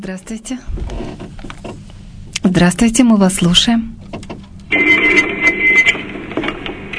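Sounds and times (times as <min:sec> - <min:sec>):
speech: 0:00.0 - 0:01.6, 0:02.6 - 0:04.0
noisy crackly phone line with faint clicks: 0:04.6 - 0:06.9
single electronic telephone ring: 0:04.7 - 0:06.2.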